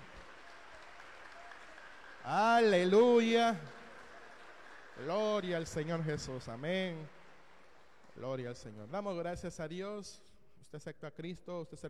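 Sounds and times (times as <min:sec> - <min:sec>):
church congregation applauding: 0:00.0 - 0:09.2
speech: 0:02.2 - 0:03.8, 0:05.0 - 0:07.2, 0:08.2 - 0:11.8.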